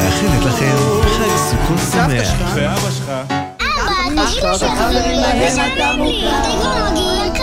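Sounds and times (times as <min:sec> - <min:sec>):
speech: 0:00.1 - 0:07.4
children shouting and whining inside a car during a family trip: 0:03.6 - 0:07.4.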